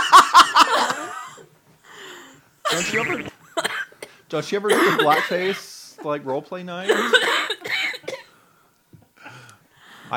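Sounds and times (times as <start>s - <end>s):
laughter: 0.0s - 1.4s, 4.8s - 7.6s
harsh coughing and rasping throat-clearing cough close to the microphone: 2.7s - 5.7s, 6.8s - 8.4s
speech: 2.8s - 3.4s, 4.3s - 7.3s.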